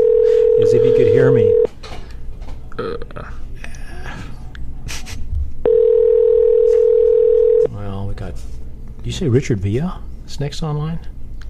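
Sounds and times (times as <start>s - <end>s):
outgoing phone call ringing tone waiting for pickup: 0.0s - 1.7s, 5.7s - 7.7s
speech: 0.6s - 1.7s, 9.1s - 11.1s
shuffling noise: 6.5s - 7.2s, 8.2s - 8.7s.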